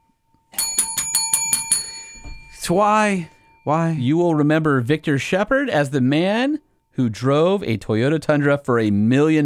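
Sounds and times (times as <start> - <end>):
bright bicycle-style bell ringing: 0.5 - 4.2
speech: 2.6 - 9.4.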